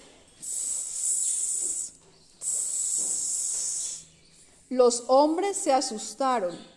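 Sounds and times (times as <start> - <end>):
snake hissing: 0.0 - 4.5
speech: 4.7 - 6.7.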